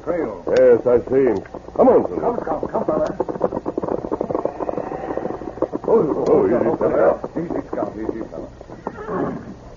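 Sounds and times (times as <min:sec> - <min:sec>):
speech: 0:00.0 - 0:03.5, 0:05.9 - 0:09.5
horse hooves clip-clopping: 0:00.5 - 0:09.7
saddled horse neighing: 0:03.8 - 0:07.2, 0:08.8 - 0:09.6.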